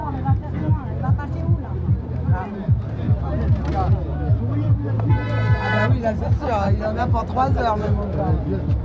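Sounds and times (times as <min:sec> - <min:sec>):
crowd chatter: 0:00.0 - 0:08.8
traffic noise: 0:00.0 - 0:08.8
truck horns honking at a roadblock: 0:05.1 - 0:06.0
speech: 0:06.1 - 0:08.8.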